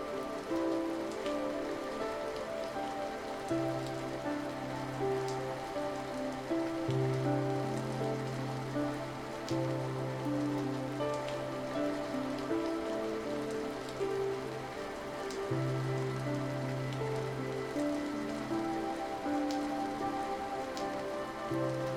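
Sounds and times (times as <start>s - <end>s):
soft instrumental music: 0.0s - 21.9s
soft rain pattering against a window: 0.0s - 21.9s.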